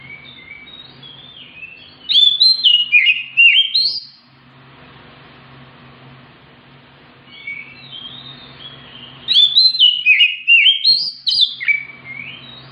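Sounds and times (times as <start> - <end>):
Oriental magpie-robin fighting song: 0.0 - 4.3, 7.3 - 12.7
low steady hum: 0.0 - 12.7.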